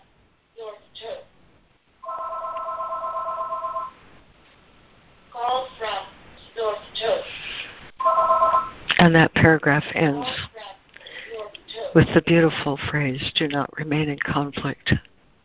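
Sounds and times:
speech: 0.6s - 1.3s, 9.0s - 10.5s, 11.9s - 15.1s
telephone ringing with electronic warble: 2.0s - 4.0s, 8.0s - 8.9s.

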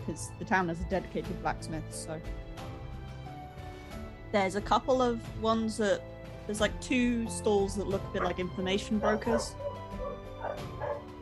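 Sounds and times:
speech: 0.1s - 2.7s, 4.3s - 9.7s
dog barking in high yippy woofs: 8.0s - 11.1s.

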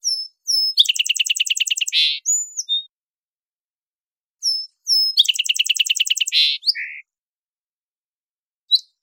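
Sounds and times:
song sparrow Melospiza melodia singing in Washington: 0.0s - 3.0s, 4.4s - 7.2s, 8.7s - 9.0s.

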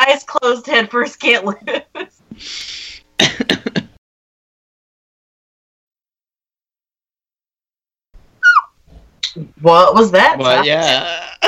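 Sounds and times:
speech: 0.1s - 3.5s, 9.4s - 11.4s
breathy huffs: 2.3s - 3.1s
throaty burst: 2.3s - 3.1s
squeaky yawn: 8.4s - 8.8s.

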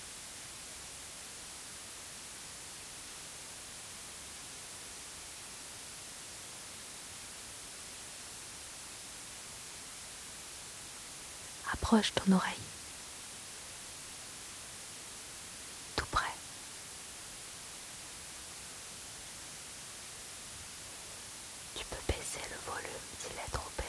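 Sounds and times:
white noise: 11.5s - 12.8s, 17.2s - 23.8s
speech: 11.8s - 12.7s.

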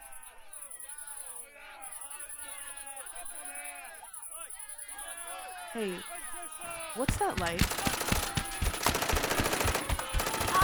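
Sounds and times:
speech: 5.8s - 6.2s, 7.0s - 8.0s
automatic gunfire: 7.1s - 10.6s.

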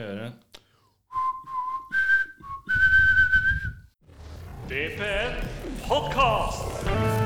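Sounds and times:
speech: 0.0s - 0.5s, 4.7s - 7.1s
person whistling a short melodic tune: 1.1s - 3.9s.

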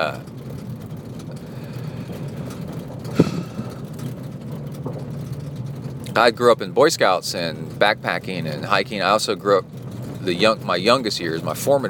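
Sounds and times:
speech: 0.0s - 0.4s, 6.2s - 11.8s
vehicle driving on a rumbly gravel road in a mountain bike park: 0.0s - 11.8s.

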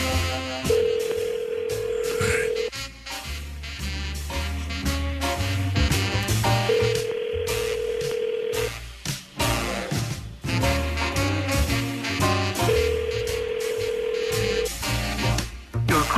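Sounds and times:
ringback tone of an unanswered outgoing phone call: 0.0s - 2.7s, 6.6s - 8.8s, 12.6s - 14.8s
steady music: 0.0s - 16.1s.

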